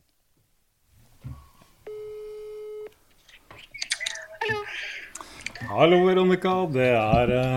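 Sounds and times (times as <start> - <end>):
telephone ringback tone while placing a call: 1.9 - 2.9
speech: 5.7 - 7.5.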